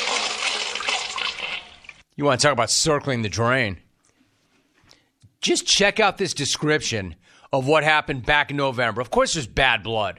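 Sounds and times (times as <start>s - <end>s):
toilet flushing: 0.0s - 2.0s
speech: 2.2s - 3.8s, 5.4s - 10.1s.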